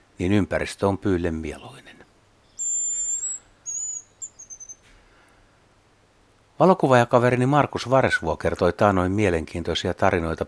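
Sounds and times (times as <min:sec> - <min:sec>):
faint background hiss: 0:00.0 - 0:10.4
hazel grouse giving high-pitched whistles and rapid short notes: 0:02.5 - 0:04.8.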